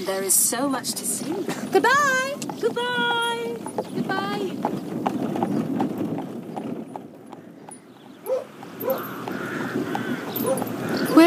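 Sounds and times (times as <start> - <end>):
speech: 0.0 - 5.4
horse hooves clip-clopping at a steady brisk pace: 0.0 - 11.2.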